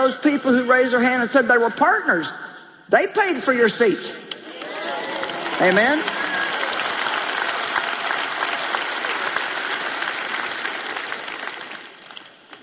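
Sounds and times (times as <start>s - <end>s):
speech: 0.0s - 4.4s, 5.6s - 6.2s
large conference audience clapping and cheering: 4.3s - 12.6s.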